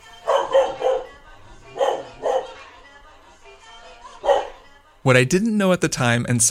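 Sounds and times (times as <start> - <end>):
female puppy barking in short sharp yaps: 0.2 - 2.8, 4.2 - 4.6
speech: 5.0 - 6.5.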